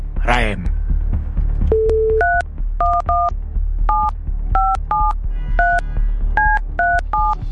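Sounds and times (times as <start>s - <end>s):
speech: 0.2s - 0.8s
DTMF keypad beeps of a phone number being dialed: 1.7s - 3.3s, 3.9s - 5.8s, 6.4s - 7.4s.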